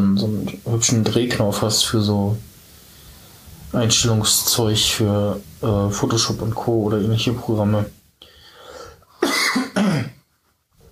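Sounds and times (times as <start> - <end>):
speech: 0.8 - 2.5, 3.7 - 8.0
loud harsh coughs: 9.2 - 10.2.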